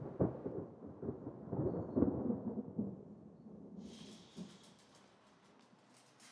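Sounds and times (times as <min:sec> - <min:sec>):
low rolling thunder with heavier cracks: 0:00.0 - 0:05.5
hiss of rain or wind: 0:03.7 - 0:06.3.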